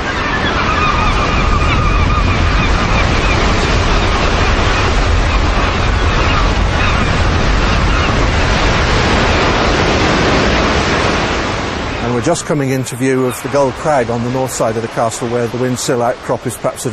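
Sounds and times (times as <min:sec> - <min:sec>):
sea waves booming against rocky cliffs: 0:00.0 - 0:16.9
speech: 0:12.2 - 0:16.9.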